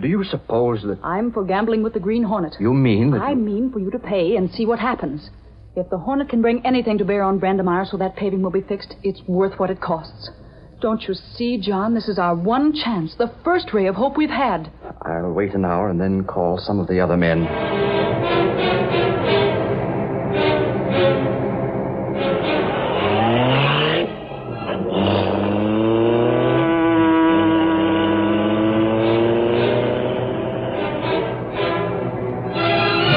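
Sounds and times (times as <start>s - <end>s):
speech: 0.0s - 17.8s
car engine revving as the vehicle accelerates and shifts: 17.4s - 33.1s.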